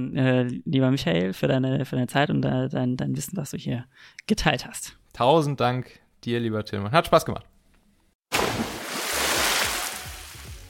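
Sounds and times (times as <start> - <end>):
speech: 0.0 - 7.5
loud splash of something jumping into cold water: 8.3 - 10.6.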